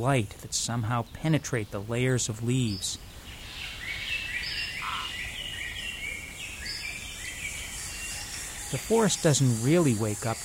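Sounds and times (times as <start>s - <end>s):
speech: 0.0s - 3.2s, 8.7s - 10.4s
constant hiss: 0.0s - 10.4s
overlapping bird calls in a tropical rainforest: 0.9s - 10.4s
insect-like trills in a tropical rainforest: 4.8s - 5.2s, 6.2s - 10.4s.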